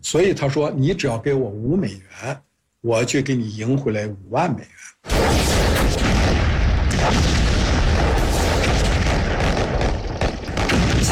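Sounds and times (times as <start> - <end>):
speech: 0.1 - 6.3, 6.9 - 7.5
explosions and artillery booms from aircraft and warships during an amphibious landing: 5.1 - 11.1.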